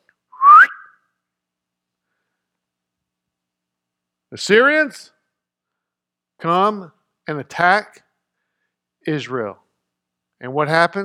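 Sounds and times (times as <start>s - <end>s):
human whistling sliding upward in pitch: 0.4s - 1.0s
speech: 4.3s - 5.2s, 6.4s - 8.0s, 9.0s - 9.6s, 10.4s - 11.0s.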